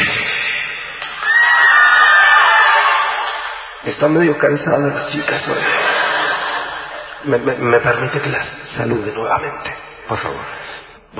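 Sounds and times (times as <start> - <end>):
female fans shouting and cheering: 1.1 - 3.8
speech: 3.9 - 5.9, 7.2 - 11.1
laughter: 5.2 - 7.4.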